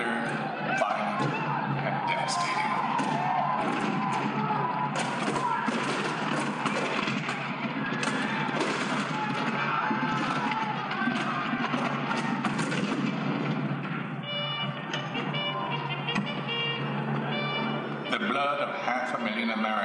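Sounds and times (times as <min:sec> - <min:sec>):
indistinct voices: 0:00.0 - 0:19.8
gunfire at Fort Sumter: 0:02.8 - 0:14.4
cannon fire at Fort Sumter: 0:02.9 - 0:14.0.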